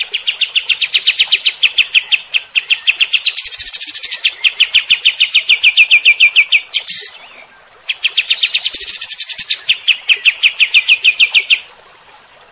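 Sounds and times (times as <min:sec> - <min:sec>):
cream-vented bulbul song of sharp chirped notes: 0:00.1 - 0:11.7.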